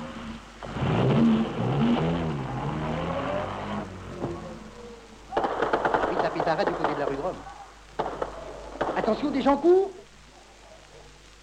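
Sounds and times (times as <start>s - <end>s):
car engines revving as vehicles pull away fast: 0.0s - 7.5s
noisy hiss: 0.0s - 11.4s
speech: 9.1s - 10.0s.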